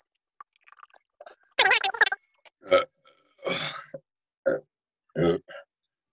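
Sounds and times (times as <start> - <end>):
person burping: 1.7 - 5.7.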